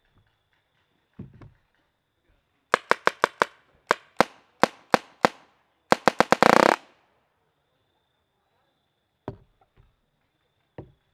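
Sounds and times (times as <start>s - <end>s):
Spyder paintball guns firing: 2.8s - 6.9s.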